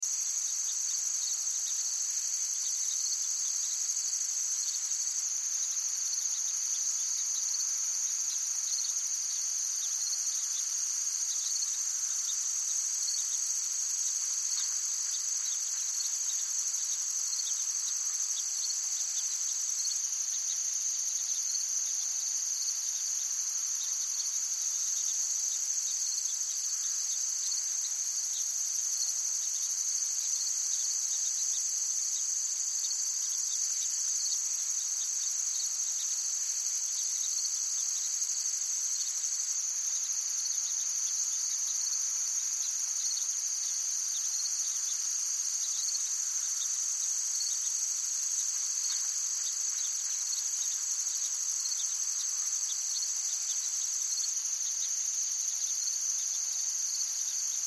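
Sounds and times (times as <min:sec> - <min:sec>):
heavy insects in an active forest: 0:00.1 - 0:57.6.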